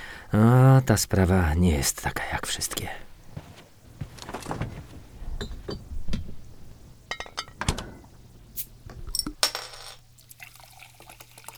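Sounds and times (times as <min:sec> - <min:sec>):
speech: 0:00.3 - 0:03.1
glass clinks: 0:07.1 - 0:07.6
beer being poured into glasses: 0:10.1 - 0:11.5.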